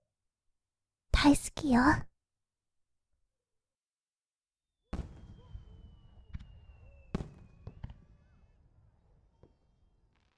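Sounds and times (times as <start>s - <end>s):
speech: 1.2s - 2.1s
fireworks bursting with sharp booms and crackles: 4.9s - 10.3s
firework whistling streak: 5.0s - 8.6s.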